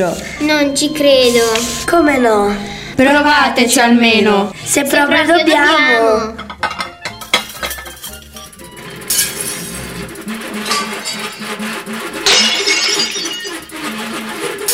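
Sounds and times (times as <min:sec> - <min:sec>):
speech: 0:00.0 - 0:06.7
plates breaking and clattering: 0:06.4 - 0:09.7, 0:12.2 - 0:13.8.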